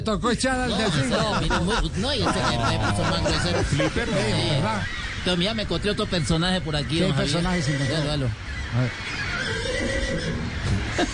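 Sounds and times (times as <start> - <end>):
speech: 0.0 - 10.2, 11.0 - 11.1
laughter: 0.6 - 5.8, 10.7 - 11.1
horse whinnying: 9.1 - 10.5.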